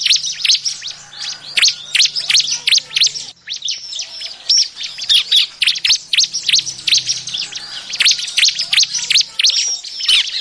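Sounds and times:
Bar-winged Prinia singing sharp high chirps and slurred notes: 0.0s - 10.3s.

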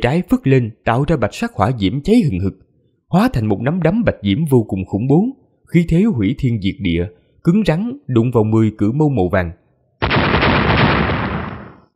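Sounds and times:
speech: 0.0s - 10.2s
explosions: 10.0s - 11.9s.

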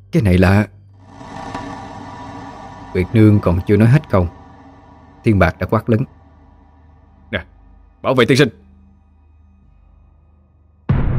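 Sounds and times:
speech: 0.1s - 0.8s, 2.9s - 4.4s, 5.2s - 6.2s, 7.3s - 8.6s
low murmur: 0.2s - 8.6s
floating sphere of blood exploding with a roar: 1.0s - 7.3s, 10.9s - 11.1s.

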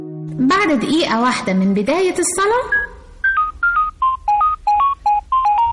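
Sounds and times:
speech: 0.4s - 2.8s
mobile phone ringtone going off during prayer: 2.7s - 5.7s.

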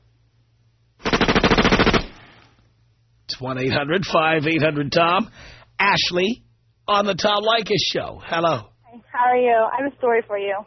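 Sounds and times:
machine-gun burst sound effect: 1.0s - 2.4s
speech: 3.4s - 10.6s.

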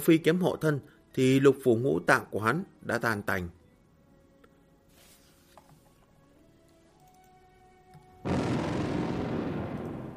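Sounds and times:
speech: 0.0s - 3.6s
series of explosions through earth, rock, snow and ice on a snowy mountain: 8.2s - 10.1s.

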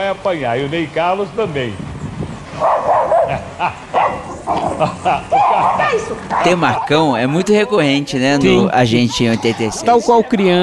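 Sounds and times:
speech: 0.0s - 1.9s, 2.5s - 10.6s
dog barking and yelping as dog catchers take it from its owner: 2.6s - 7.0s
laughter: 3.4s - 10.6s.

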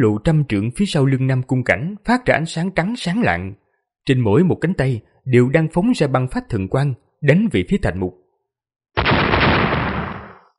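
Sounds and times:
speech: 0.0s - 8.2s
huge explosion sound effect: 9.0s - 10.5s.

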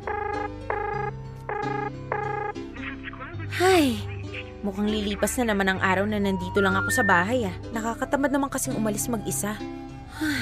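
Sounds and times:
telephone ringback tone while calling a coworker: 0.0s - 2.6s
speech: 3.6s - 10.4s.

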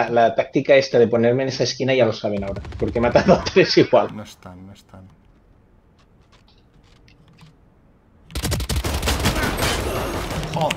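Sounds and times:
speech: 0.0s - 5.2s, 10.6s - 10.7s
rapid video game gunfire: 2.3s - 3.7s, 8.3s - 10.4s.

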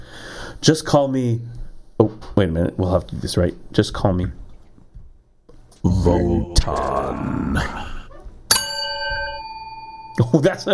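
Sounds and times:
faint murmur: 0.0s - 10.7s
speech: 0.6s - 4.4s, 5.8s - 7.8s, 10.2s - 10.7s
single bell struck: 8.5s - 10.7s.

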